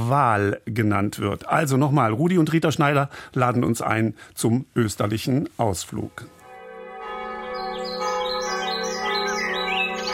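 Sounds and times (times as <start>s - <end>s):
speech: 0.1s - 6.4s
church bells ringing: 6.2s - 10.1s
birds chirping: 7.6s - 10.1s.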